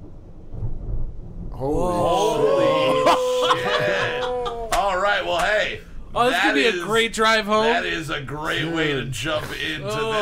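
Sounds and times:
deep thunder roll from a January lightning storm: 0.0s - 6.2s
faint hiss of rain: 0.0s - 10.2s
speech: 1.6s - 2.0s, 5.7s - 10.2s
laughter: 2.1s - 5.4s, 8.5s - 10.2s.

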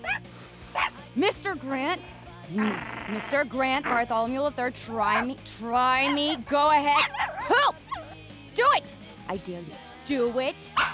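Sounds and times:
dog barking and yipping: 0.0s - 1.0s, 3.8s - 4.1s, 4.8s - 8.2s, 10.8s - 10.9s
speech: 1.2s - 7.8s, 8.6s - 10.9s.

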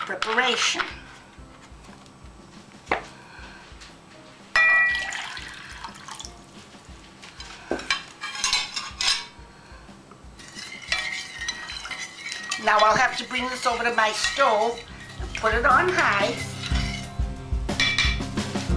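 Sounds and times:
speech: 0.1s - 1.0s, 12.6s - 16.5s
utensil scraping and clinking against a metal pot: 7.3s - 9.4s, 10.4s - 18.6s
sugar and white vinegar liquid sloshing: 10.4s - 17.0s.

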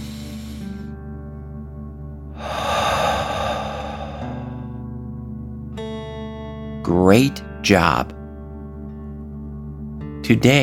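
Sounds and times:
slow deep breathing in and out during a calming breathing exercise: 0.0s - 1.1s, 2.3s - 5.1s
speech: 6.9s - 8.2s, 10.3s - 10.6s.

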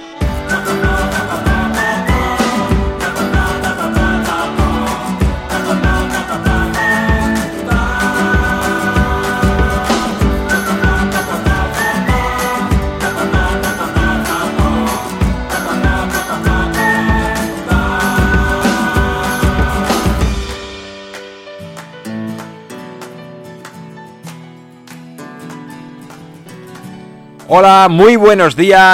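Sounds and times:
upbeat guitar theme with strummed chords: 0.0s - 28.9s
speech: 27.5s - 28.9s.

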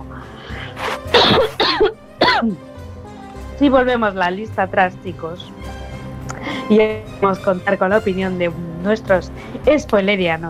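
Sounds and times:
harsh coughing: 1.1s - 2.6s
speech: 3.6s - 5.7s, 6.7s - 10.4s.

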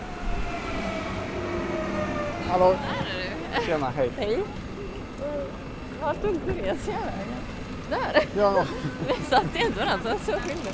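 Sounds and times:
train from Stockholm arriving at a central station: 0.0s - 10.7s
speech: 2.5s - 4.6s, 5.3s - 10.7s
laughter: 3.3s - 4.1s, 7.9s - 10.7s.

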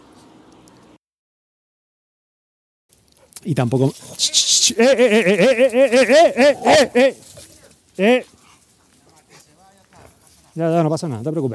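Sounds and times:
speech: 3.4s - 8.4s, 10.6s - 11.5s
laughter: 4.5s - 7.2s, 8.0s - 8.2s
dog whimpering: 4.9s - 7.1s
dog barking: 6.2s - 7.1s.

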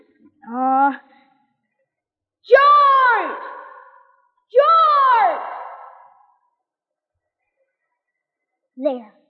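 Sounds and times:
speech: 0.5s - 1.1s, 8.8s - 9.2s
shouted call echoing in a cave: 2.5s - 6.3s.

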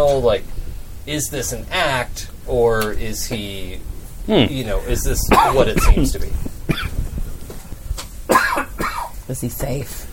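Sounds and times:
quiet low rumbling: 0.0s - 9.4s
speech: 0.1s - 7.0s, 9.3s - 10.1s
harsh cough: 5.3s - 6.1s, 6.7s - 7.0s, 8.3s - 9.2s.

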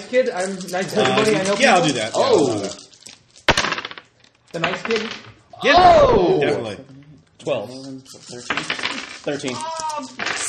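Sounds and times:
small hard dice rattling and clacking across a table: 0.0s - 5.4s, 8.1s - 10.4s
speech: 0.1s - 2.8s, 4.5s - 10.4s.

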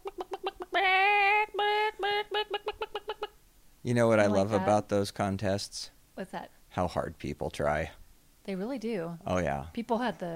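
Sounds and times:
person imitating a chicken in a chicken impression contest: 0.0s - 3.3s, 4.2s - 4.8s
speech: 3.9s - 10.3s.

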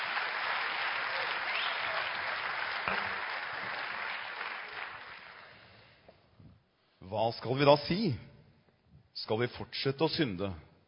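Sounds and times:
audience applause: 0.0s - 5.8s
speech: 7.1s - 8.3s, 9.2s - 10.7s.

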